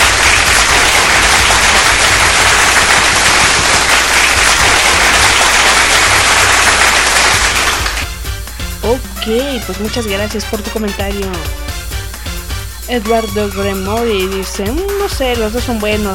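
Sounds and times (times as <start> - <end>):
crowd applauding: 0.0 - 8.1
speech: 8.9 - 11.7, 12.9 - 16.1.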